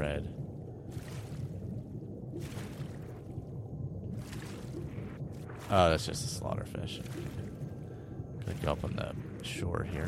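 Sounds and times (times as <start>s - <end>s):
underwater ambience low watery rumble in a video game: 0.0s - 10.0s
speech: 5.7s - 7.4s, 8.6s - 10.0s.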